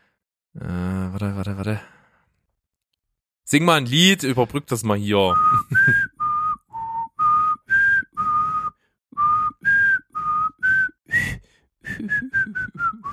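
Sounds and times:
speech: 0.6 - 2.0, 3.5 - 6.0
person whistling a melody: 5.3 - 13.1
laughter: 5.4 - 6.1.

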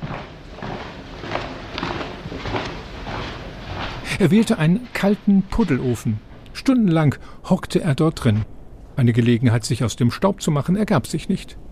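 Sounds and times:
crunching footsteps at walking pace: 0.0 - 7.0
dense rumbling noise: 0.0 - 11.6
speech: 4.2 - 11.6.

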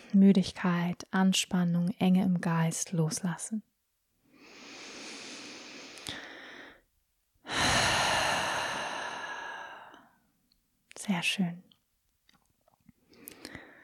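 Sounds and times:
speech: 0.1 - 3.7, 11.1 - 11.7
slow deep breathing during a relaxation exercise: 4.2 - 10.2, 13.0 - 13.8.

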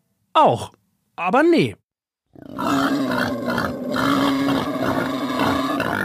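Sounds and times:
speech: 0.4 - 1.8
wild boar grunting and snorting on a street in Berlin at night: 2.3 - 6.0.

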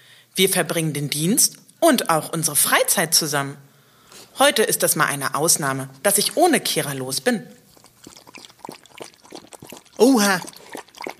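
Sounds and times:
speech: 0.4 - 3.7, 4.4 - 8.2, 10.0 - 10.6
police dog lapping water from a bowl: 7.6 - 11.1.

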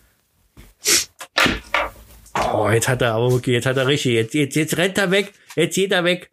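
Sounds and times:
nose blowing into tissue: 0.7 - 1.3
person sneezing: 0.8 - 1.3
speech: 2.6 - 6.3.

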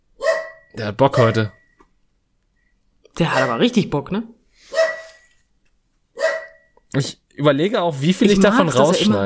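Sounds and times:
dog barking: 0.2 - 1.6, 3.3 - 3.8, 4.7 - 5.2, 6.2 - 6.7
speech: 0.7 - 1.6, 3.2 - 4.8, 6.9 - 9.2.

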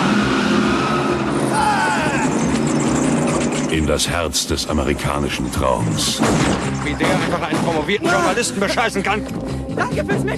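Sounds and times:
convertible car engine roar driving off: 0.0 - 6.9
convertible car road noise: 0.0 - 10.3
speech: 3.9 - 10.3.

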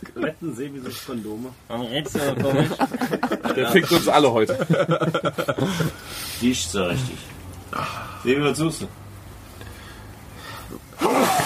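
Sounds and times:
speech: 0.0 - 9.0
laughter: 2.1 - 6.1
person sneezing: 11.0 - 11.4.

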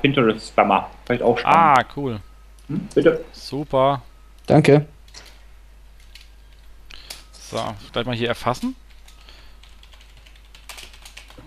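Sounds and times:
speech: 0.0 - 5.3, 7.5 - 8.8
typing on a computer keyboard: 6.0 - 11.4.

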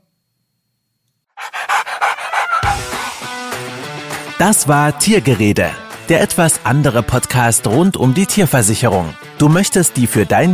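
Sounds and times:
dog panting: 1.4 - 3.4
music: 1.7 - 10.5
speech: 4.4 - 10.5.

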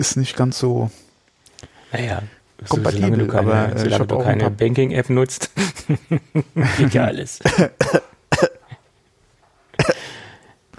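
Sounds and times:
speech: 0.0 - 1.1, 1.9 - 8.6
laughter: 5.5 - 7.1
person coughing: 7.4 - 8.8, 9.8 - 10.3
raspy breath: 10.0 - 10.6.

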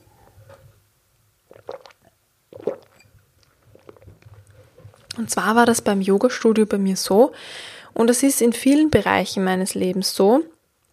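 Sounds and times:
sipping and swallowing water: 1.5 - 5.2
speech: 5.2 - 10.5.

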